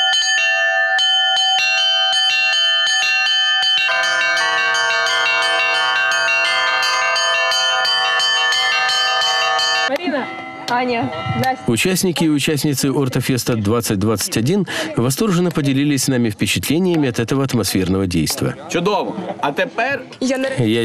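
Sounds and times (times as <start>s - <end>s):
church bells ringing in a peal: 0.0s - 12.9s
speech: 10.7s - 20.8s.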